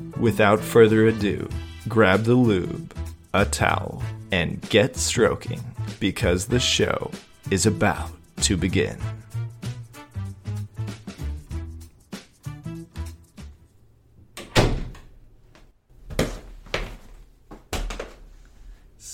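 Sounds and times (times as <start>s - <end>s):
speech: 0.2s - 9.2s
door banging open as someone barges in: 14.4s - 15.2s.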